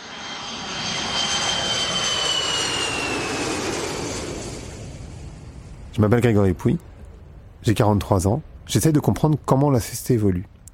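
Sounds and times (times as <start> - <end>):
high whining tone of jet engine: 0.0 - 6.0
jet airplane engine roaring past: 0.0 - 7.4
speech: 6.0 - 6.9, 7.6 - 10.6.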